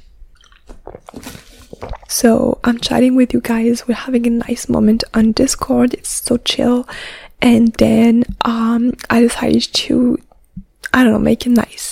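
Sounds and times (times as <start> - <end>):
person swallowing water: 0.3 - 3.1
person sipping water from a water bottle: 0.3 - 3.9
speech: 1.8 - 10.3, 10.9 - 11.8.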